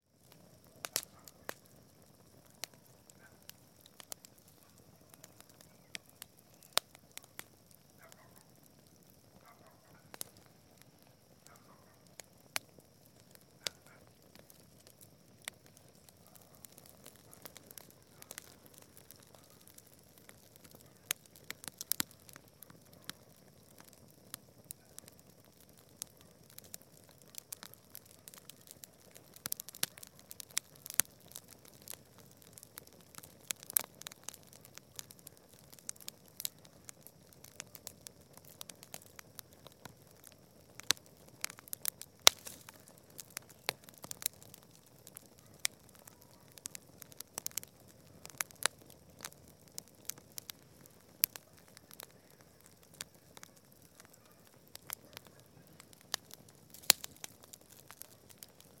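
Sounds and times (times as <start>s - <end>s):
campfire in the countryside: 0.0s - 58.7s.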